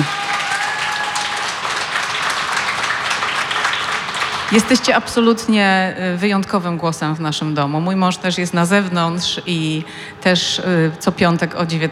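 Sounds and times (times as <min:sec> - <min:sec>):
audience applause: 0:00.0 - 0:04.9
speech: 0:04.5 - 0:11.8.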